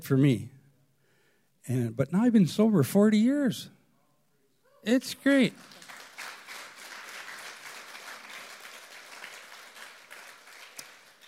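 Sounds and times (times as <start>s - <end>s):
speech: 0.0s - 0.5s, 1.6s - 3.8s, 4.8s - 5.8s
audience cheering: 4.9s - 11.2s
audience applause: 5.2s - 11.2s.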